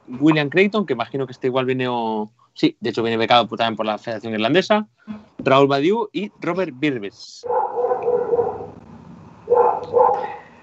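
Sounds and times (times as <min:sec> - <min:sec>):
speech: 0:00.1 - 0:07.6
dog barking: 0:07.4 - 0:08.8, 0:09.5 - 0:10.4.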